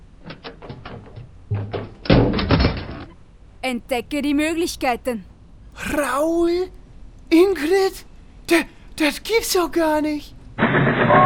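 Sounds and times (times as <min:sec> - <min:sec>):
locomotive side door clicks and thunk: 0:00.3 - 0:03.2
speech: 0:03.7 - 0:11.2.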